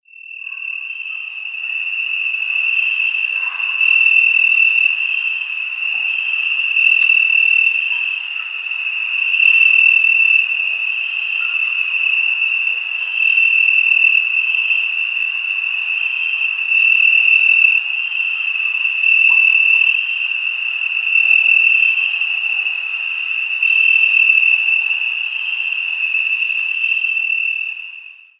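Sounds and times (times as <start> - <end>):
crickets chirping: 0.1 - 28.3.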